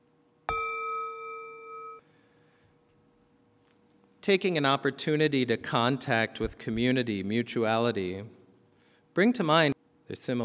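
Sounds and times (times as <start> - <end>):
meditation bell struck during a guided meditation: 0.5 - 2.2
speech: 4.2 - 8.4, 9.2 - 10.4.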